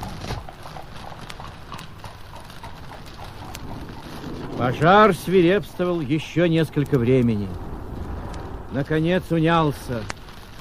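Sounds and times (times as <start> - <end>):
horse hooves clip-clopping on hard ground pulling a cart out of a yard: 0.0 - 10.6
speech: 4.6 - 7.7, 8.7 - 10.2.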